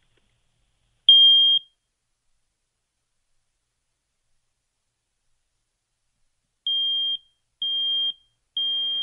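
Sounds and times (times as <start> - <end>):
smoke alarm test button beeps: 1.1 - 1.8, 6.7 - 9.0.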